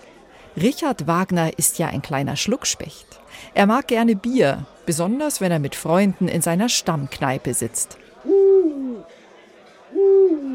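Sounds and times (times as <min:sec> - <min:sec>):
speech: 0:00.6 - 0:08.9
owl hooting: 0:08.3 - 0:09.0, 0:10.0 - 0:10.5.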